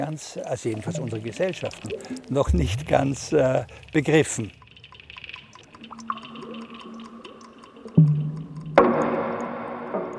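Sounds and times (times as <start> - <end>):
speech: 0.0 - 4.6
water dripping: 0.0 - 10.1
running water rushing: 0.4 - 5.0
water splashing: 0.5 - 9.0.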